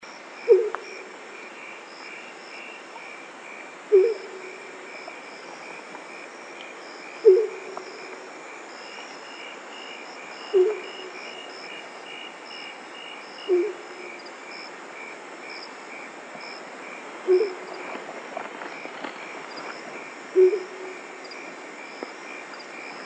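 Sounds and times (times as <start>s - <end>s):
Bubo virginianus Great horned Owl hooting: 0.5s - 1.0s, 3.9s - 4.6s, 7.2s - 7.8s, 10.5s - 11.2s, 13.5s - 13.9s, 17.3s - 17.8s, 20.4s - 21.0s.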